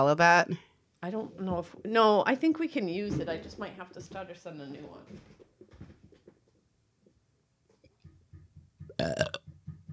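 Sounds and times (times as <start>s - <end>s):
speech: 0.0s - 5.4s, 9.0s - 9.4s
soft guttural croaks: 8.9s - 9.4s
loud burp: 8.9s - 9.5s.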